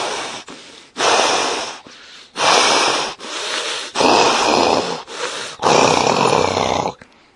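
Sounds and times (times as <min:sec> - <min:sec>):
heavy angry snorting breaths from a large creature: 0:00.0 - 0:07.0.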